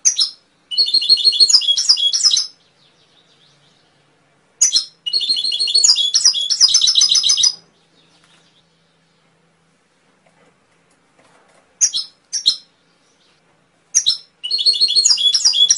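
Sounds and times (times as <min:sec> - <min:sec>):
canary song training recording to stimulate songbirds: 0:00.0 - 0:09.8, 0:11.8 - 0:15.7.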